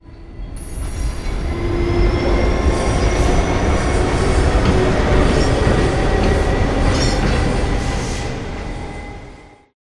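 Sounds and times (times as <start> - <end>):
train approaching: 0.0 - 9.8.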